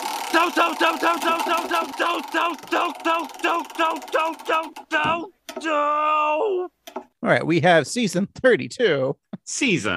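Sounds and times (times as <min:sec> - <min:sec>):
spinning prize wheel ticking: 0:00.0 - 0:05.7
speech: 0:00.4 - 0:09.9.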